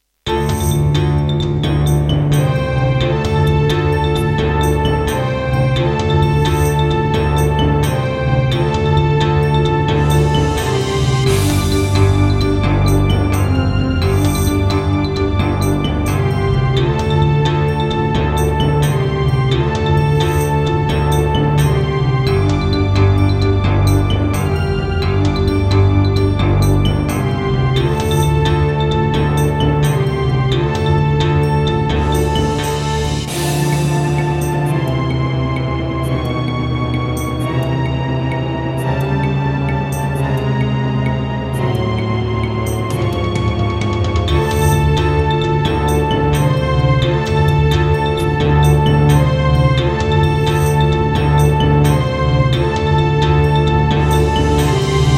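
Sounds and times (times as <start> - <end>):
Roland SD-50 wavetable synthesizer sounds in GM2 mode: 0.2 - 55.1.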